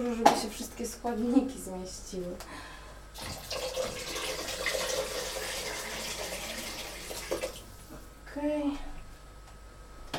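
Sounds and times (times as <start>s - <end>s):
speech: 0.0s - 3.7s, 8.4s - 8.9s
water pouring from a tap into a cooking pot: 3.2s - 7.6s.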